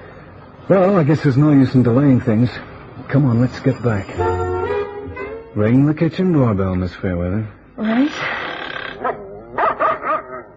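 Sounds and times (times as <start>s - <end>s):
speech: 0.7s - 4.3s, 5.6s - 8.4s
dogs barking and yipping: 9.0s - 10.5s.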